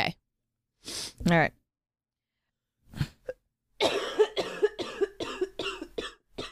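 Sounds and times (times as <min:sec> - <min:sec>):
speech: 0:01.3 - 0:01.6
wet chesty cough bringing up phlegm: 0:03.8 - 0:06.5.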